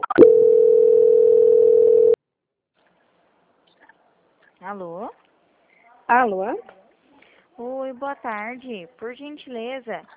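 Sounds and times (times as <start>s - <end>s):
telephone line tone while a call is being transferred: 0.0s - 2.2s
speech: 6.1s - 6.8s, 7.6s - 10.1s.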